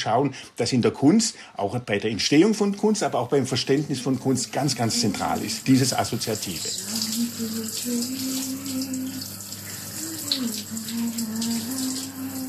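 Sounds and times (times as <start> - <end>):
speech: 0.0 - 9.4
shower water running: 3.3 - 12.4.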